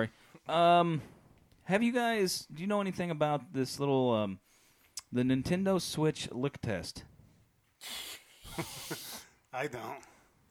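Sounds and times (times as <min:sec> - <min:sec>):
speech: 0:00.0 - 0:04.5, 0:05.1 - 0:07.1, 0:07.8 - 0:10.1
loud breathy snake-like hissing: 0:07.8 - 0:09.4.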